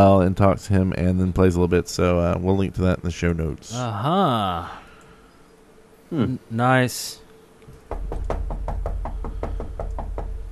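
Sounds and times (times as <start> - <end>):
speech: 0.0 - 4.8, 6.1 - 7.2
constant low hum: 0.0 - 10.4
knocking on a door: 7.8 - 10.4.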